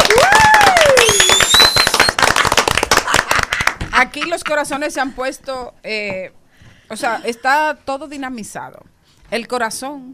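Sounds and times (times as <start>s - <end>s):
crowd applauding: 0.0s - 3.8s
crowd whoops and whistles: 0.1s - 2.1s
speech: 4.0s - 10.1s.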